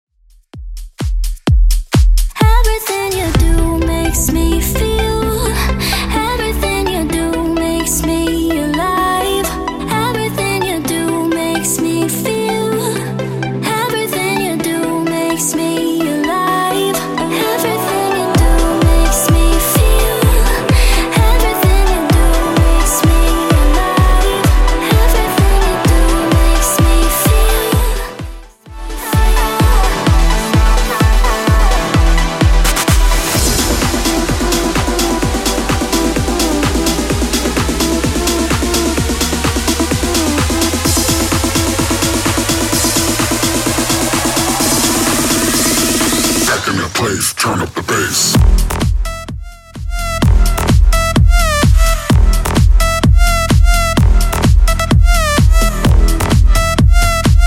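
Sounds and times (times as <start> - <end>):
EDM music at 128 bpm: 0.3 - 57.4.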